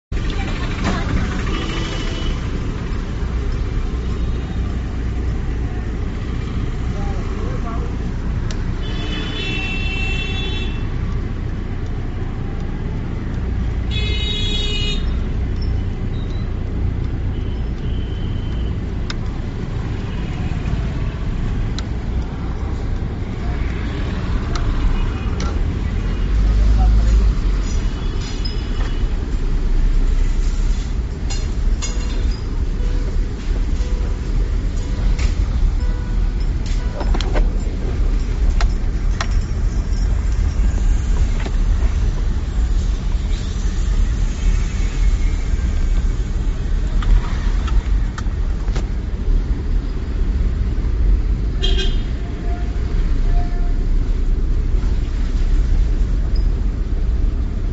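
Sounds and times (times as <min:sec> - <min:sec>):
traffic: 0:00.0 - 0:57.7.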